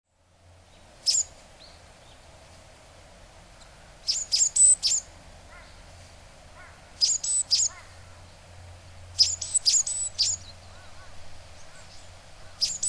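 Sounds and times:
low background hum: 0:00.1 - 0:12.8
Japanese tit high sharp calls in Hyogo: 0:04.1 - 0:05.8, 0:06.6 - 0:08.1, 0:09.2 - 0:12.8.

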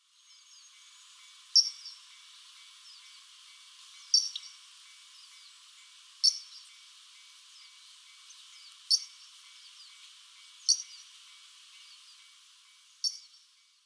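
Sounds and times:
Daurian redstart calling: 0:00.2 - 0:13.8.

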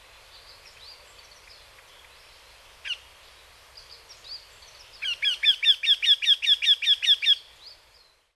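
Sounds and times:
Eurasian wryneck calling: 0:05.0 - 0:07.4.

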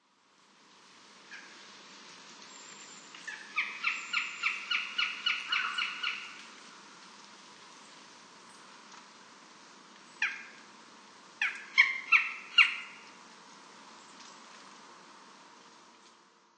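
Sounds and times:
Northern Goshawk calling: 0:03.3 - 0:06.4, 0:11.4 - 0:13.1.

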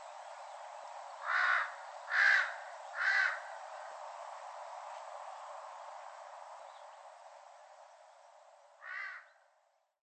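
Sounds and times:
large-billed crow cawing on Ishigaki, Japan: 0:01.2 - 0:03.5, 0:08.8 - 0:09.4.

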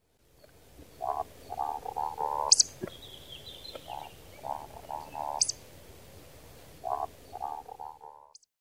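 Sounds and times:
Amami woodcock calling: 0:00.4 - 0:05.6, 0:06.8 - 0:08.4.

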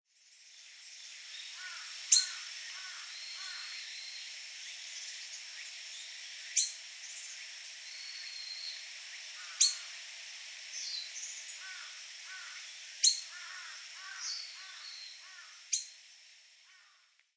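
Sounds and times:
forest wagtail in Nagasaki: 0:00.1 - 0:17.3.

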